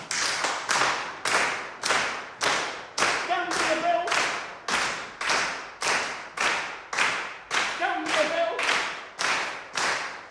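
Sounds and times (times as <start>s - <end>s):
group hands clapping in body percussion: 0.0s - 10.2s
person calling out over the beat: 7.8s - 8.6s.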